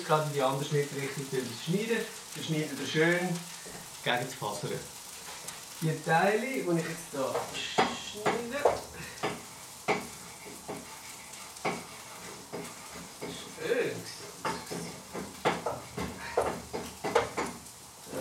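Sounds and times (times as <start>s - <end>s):
speech: 0.0s - 5.0s, 5.8s - 9.1s
soft sizzle of Spätzle frying in a hot pan: 0.0s - 18.2s
Spätzle being stirred in a hot pan: 6.8s - 17.6s.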